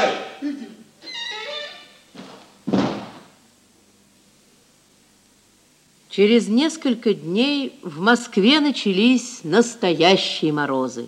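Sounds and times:
door creaking on its hinges: 1.0 - 2.0
heavier thud of a door closing: 2.2 - 3.4
speech: 6.2 - 11.0.

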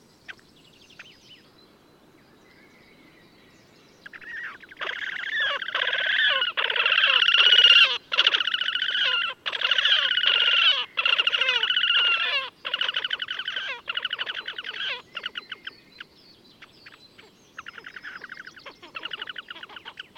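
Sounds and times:
Horned grebe Podiceps auritus giving loud nasal squealing trills: 4.2 - 15.0.

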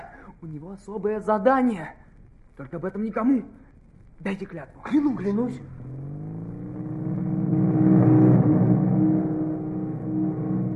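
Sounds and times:
speech: 0.4 - 2.0, 2.6 - 3.6, 4.2 - 5.8
squad of motorcycles driving past: 5.6 - 10.7.

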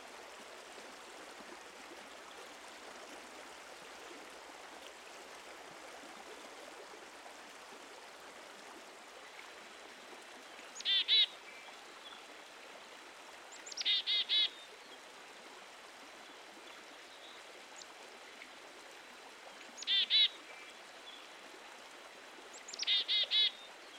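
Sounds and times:
running water: 0.0 - 23.9
small songbird calling: 10.8 - 11.3, 13.6 - 14.6, 19.8 - 20.4, 22.6 - 23.7.

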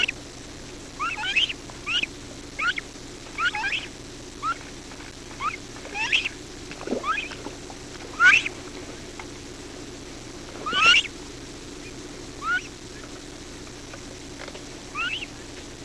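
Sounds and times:
faint low hum: 0.0 - 15.8
horned coot Fulica cornuta rising nasal calls: 1.0 - 4.7, 5.3 - 8.6, 10.6 - 11.2, 11.8 - 13.2, 14.9 - 15.5.

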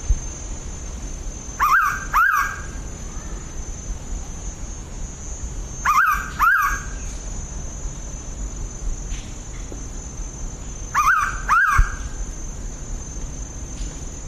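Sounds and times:
faint high-pitched hum: 0.0 - 14.2
mangrove pitta Pitta megarhyncha paired whistled calls: 1.6 - 3.5, 5.8 - 7.1, 10.9 - 12.2.

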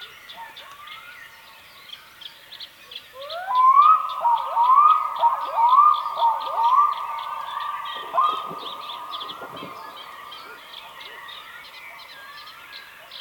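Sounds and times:
small birds chirping: 1.8 - 13.1
Black-throated diver calling in a mournful wail: 4.3 - 11.4.

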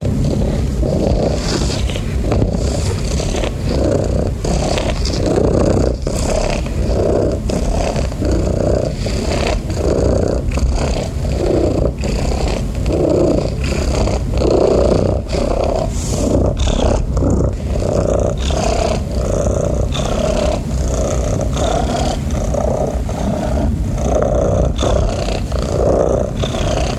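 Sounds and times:
domestic cat purring with a coarse rumble: 0.0 - 26.9.

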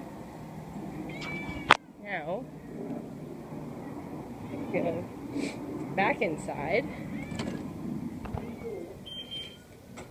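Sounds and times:
steady low hum: 0.0 - 10.0
stray cat meowing: 1.1 - 1.8, 7.1 - 7.6, 8.3 - 9.7
speech: 6.0 - 7.4.

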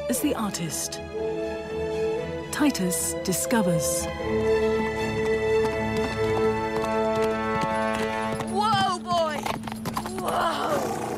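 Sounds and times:
speech: 0.1 - 1.4, 2.6 - 5.1
horse galloping with hooves clip-clopping: 4.2 - 11.1.

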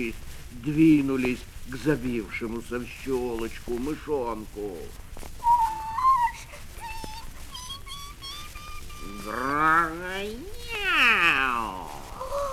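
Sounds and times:
speech: 0.0 - 5.5, 9.2 - 11.3
soft high tones: 5.4 - 12.5
cat meowing: 5.5 - 12.5.

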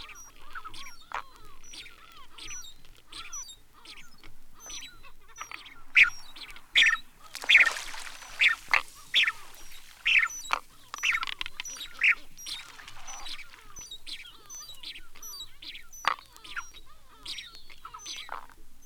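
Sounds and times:
steamer duck mewing calls and harsh squawks: 3.8 - 13.6.

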